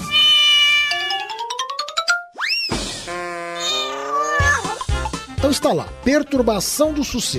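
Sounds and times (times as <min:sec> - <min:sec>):
cat meowing loudly: 0:00.0 - 0:01.2, 0:03.6 - 0:04.8
speech: 0:05.5 - 0:07.3.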